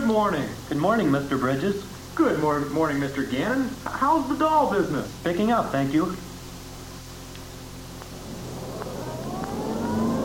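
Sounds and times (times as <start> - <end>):
speech: 0.1 - 6.3
car engine speeding toward pedestrians: 8.0 - 10.2.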